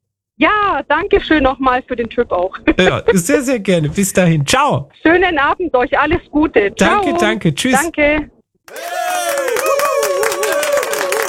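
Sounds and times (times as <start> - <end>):
speech: 0.4 - 8.9
crowd applause: 8.7 - 11.2
voices cheering and calling out: 8.7 - 11.2.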